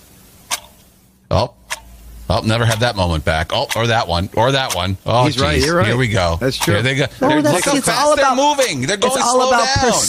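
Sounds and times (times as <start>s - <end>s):
clock ticking: 0.5s - 7.4s
speech: 1.3s - 1.6s, 2.3s - 10.0s.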